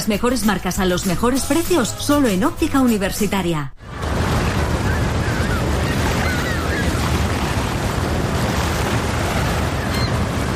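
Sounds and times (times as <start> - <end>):
speech: 0.0 - 3.9
sea waves breaking on the shore at Albir: 3.8 - 10.5.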